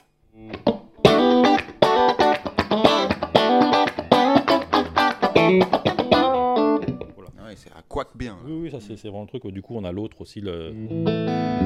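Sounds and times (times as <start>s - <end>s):
electric guitar playing bright chiming chords and notes with light vibrato and reverb: 0.3s - 7.3s, 10.8s - 11.6s
speech: 8.0s - 11.6s.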